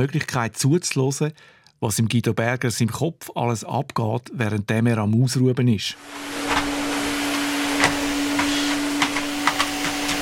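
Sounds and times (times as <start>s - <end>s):
speech: 0.0s - 6.7s
vacuum cleaner droning with motor whine: 6.0s - 10.2s.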